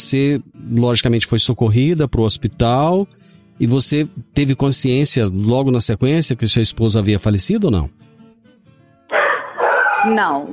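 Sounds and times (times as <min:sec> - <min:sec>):
speech: 0:00.1 - 0:08.2, 0:10.0 - 0:10.5
dogs barking: 0:09.1 - 0:10.5.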